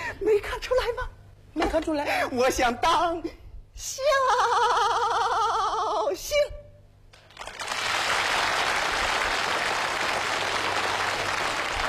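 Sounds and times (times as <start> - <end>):
speech: 1.7 - 6.6
audience applause: 7.2 - 11.8.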